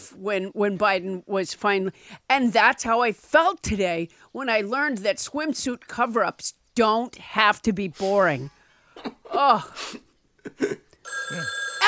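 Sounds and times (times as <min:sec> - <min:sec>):
speech: 0:00.1 - 0:11.8
telephone bell ringing: 0:11.0 - 0:11.8.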